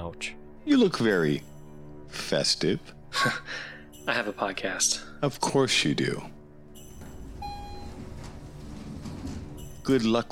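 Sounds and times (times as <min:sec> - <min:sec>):
speech: 0:00.1 - 0:01.5, 0:02.1 - 0:06.4, 0:09.9 - 0:10.3
single bright electronic chime: 0:06.8 - 0:08.2
elevator doors sliding shut: 0:06.8 - 0:10.3.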